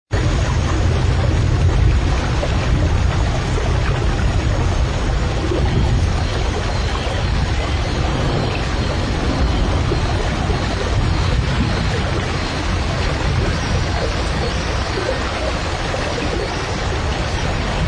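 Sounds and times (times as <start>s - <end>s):
rainforest ambience: 0.2s - 17.8s.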